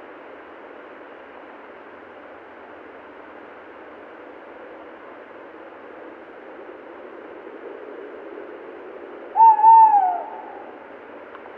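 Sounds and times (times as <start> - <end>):
Tawny owl (Strix aluco) hooting: 9.3 - 10.8.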